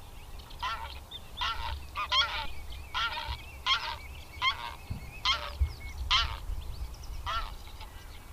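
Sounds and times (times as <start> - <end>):
low background rumble: 0.0 - 8.3
greylag goose calling: 0.6 - 6.5, 7.2 - 8.0.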